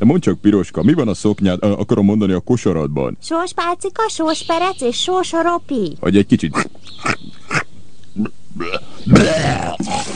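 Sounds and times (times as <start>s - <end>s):
speech: 0.0s - 7.6s, 8.2s - 10.1s
person imitating a wolf retching and vomiting: 6.5s - 10.1s.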